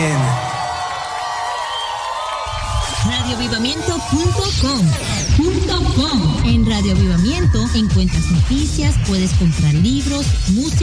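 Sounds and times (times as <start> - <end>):
audience applause: 0.0 - 5.0
cheers and whoops: 0.0 - 5.1, 6.2 - 8.3
speech: 3.3 - 10.8.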